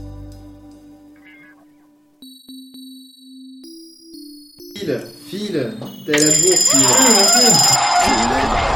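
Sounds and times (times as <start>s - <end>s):
loud harsh alarm clock ringing: 2.2s - 8.6s
speech: 4.8s - 8.6s.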